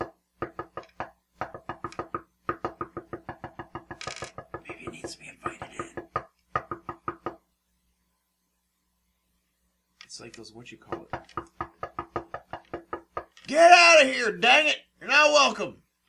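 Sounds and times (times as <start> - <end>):
knocking on a solid surface: 0.0 - 7.5, 10.9 - 13.4
speech: 4.9 - 5.6, 10.2 - 11.6, 13.5 - 15.8.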